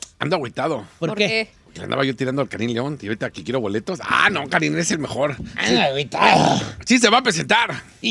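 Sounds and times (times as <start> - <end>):
speech: 0.2 - 8.0
human voice imitating an angry dog growling: 6.2 - 6.8.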